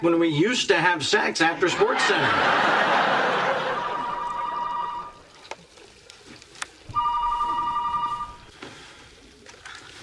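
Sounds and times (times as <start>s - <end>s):
speech: 0.0s - 3.5s
laughter: 1.4s - 5.1s
telephone ringing with electronic trilling: 3.0s - 5.3s, 6.9s - 8.5s.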